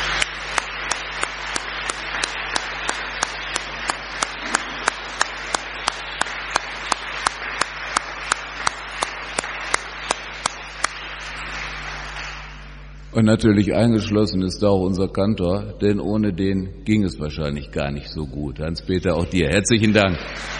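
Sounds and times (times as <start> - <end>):
large audience applause for a choir: 0.0 - 12.9, 19.7 - 20.5
speech: 13.2 - 20.5.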